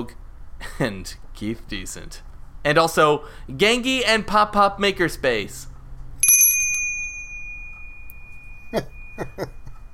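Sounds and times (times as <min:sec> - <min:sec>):
speech: 0:00.0 - 0:00.2, 0:00.8 - 0:05.7, 0:08.7 - 0:09.6
small bell struck once: 0:06.2 - 0:09.9.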